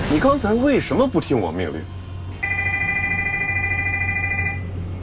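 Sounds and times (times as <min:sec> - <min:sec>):
speech: 0:00.1 - 0:02.0
aircraft cockpit cargo compartment warning alarm: 0:02.4 - 0:04.8.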